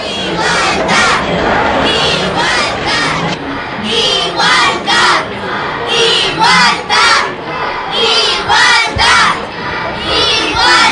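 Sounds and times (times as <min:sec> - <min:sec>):
protest crowd occupying the streets chanting slogans in unison: 0:00.0 - 0:10.9.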